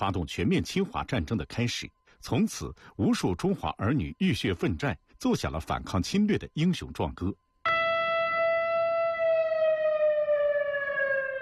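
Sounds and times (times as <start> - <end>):
speech: 0.0 - 7.4
faint noise: 0.0 - 8.8
air-raid warning siren wailing outdoors at the foot of Baota Mountain: 7.7 - 11.4.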